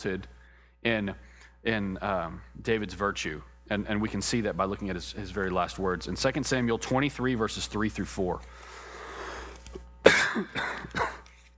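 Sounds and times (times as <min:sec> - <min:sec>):
speech: 0:00.0 - 0:08.8
faint hiss: 0:00.0 - 0:11.3
person coughing in a short fit: 0:10.0 - 0:11.4.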